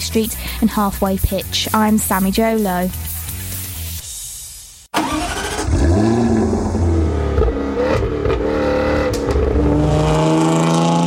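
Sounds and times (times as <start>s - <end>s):
speech: 0.0s - 3.1s
Jaguar sports car engine revving: 5.4s - 11.0s.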